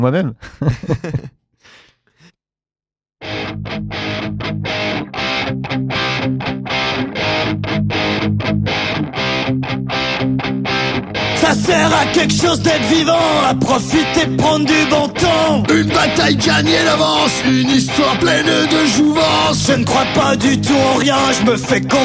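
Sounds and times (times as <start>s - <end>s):
speech: 0.0s - 1.8s, 11.4s - 22.0s
laughter: 0.4s - 2.3s
short breathy sounds: 1.6s - 2.4s
loud heavily distorted rock song on a live radio broadcast: 4.0s - 22.0s.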